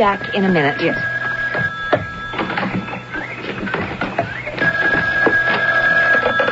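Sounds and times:
speech: 0.0 - 1.7
telephone ringing with a steady electronic tone: 0.0 - 6.4
busy clatter and thumps: 1.5 - 6.4.

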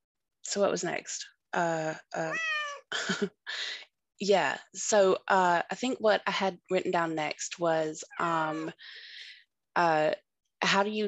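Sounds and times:
speech: 0.5 - 11.0
cat meowing: 2.3 - 2.9, 8.1 - 8.7.

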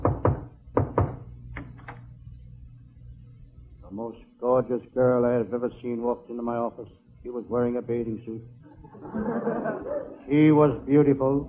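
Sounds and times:
knocking on a door: 0.0 - 1.2
speech: 4.0 - 11.4
laughter: 8.7 - 10.3.

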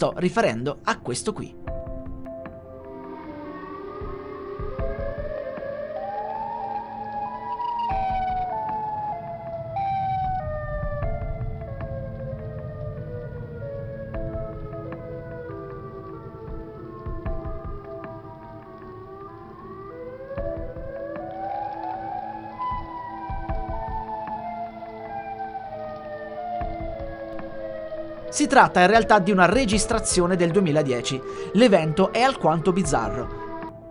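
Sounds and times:
speech: 0.0 - 1.7, 28.5 - 33.4
tornado warning siren wailing near Willow Springs Woods: 2.6 - 33.8.

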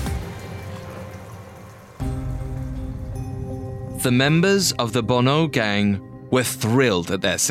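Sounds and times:
steady rain pattering on a surface: 0.0 - 4.8
speech: 4.0 - 7.4.

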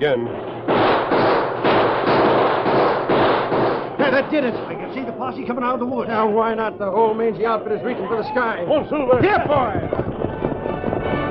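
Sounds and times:
speech: 0.0 - 0.5, 4.2 - 10.0
rapid gunshots from the woods: 0.3 - 5.2, 8.7 - 11.3.

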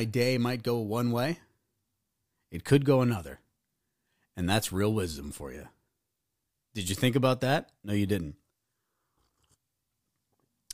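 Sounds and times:
speech: 0.0 - 1.5, 2.5 - 3.4, 4.4 - 5.8, 6.8 - 8.4
person sipping coffee: 8.9 - 9.7.

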